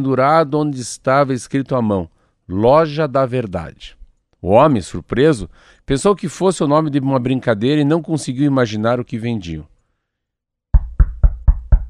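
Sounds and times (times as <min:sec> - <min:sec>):
speech: 0:00.0 - 0:09.7
firm knocks on a wooden door: 0:10.8 - 0:11.8.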